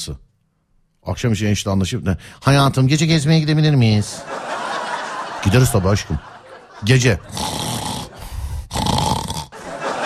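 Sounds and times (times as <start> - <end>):
speech: 0.0 - 0.3, 1.0 - 4.5, 5.4 - 7.6
laughter: 4.0 - 8.3, 9.5 - 10.0
man snoring loudly: 7.3 - 9.6.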